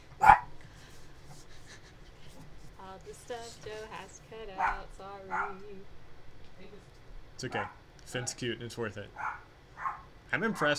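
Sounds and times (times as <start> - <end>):
dog barking: 0.2 - 0.6, 4.6 - 5.7, 7.5 - 7.8, 9.1 - 10.7
speech: 3.3 - 6.0, 6.6 - 9.5, 10.3 - 10.7.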